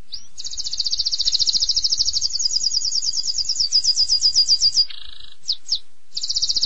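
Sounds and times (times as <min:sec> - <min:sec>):
canary song with rolling trills and buzzy notes: 0:00.0 - 0:06.6
faint low background hum: 0:00.0 - 0:06.6.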